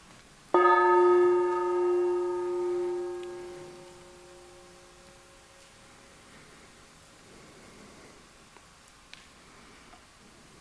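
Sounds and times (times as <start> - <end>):
gong ringing: 0.6 - 5.8.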